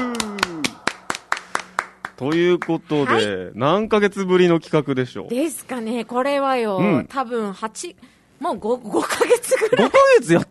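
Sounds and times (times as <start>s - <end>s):
hands clapping in applause: 0.0s - 3.0s
speech: 2.2s - 10.5s.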